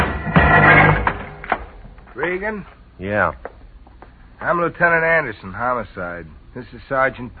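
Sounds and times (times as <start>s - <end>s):
door being kicked open with a loud thud: 0.0s - 1.8s
speech: 2.2s - 3.6s, 4.4s - 7.3s.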